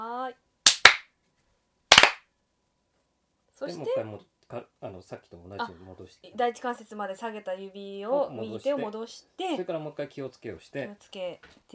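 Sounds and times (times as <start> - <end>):
hand claps with hands spread shoulder-width in a bowing ritual: 0.7 - 1.0, 1.9 - 2.2
speech: 3.6 - 11.7.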